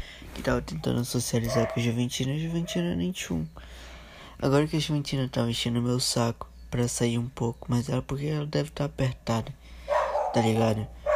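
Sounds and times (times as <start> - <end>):
speech: 0.4 - 9.7, 10.3 - 11.0
dog barking or yelping: 1.4 - 2.0, 2.6 - 3.0, 9.9 - 11.1.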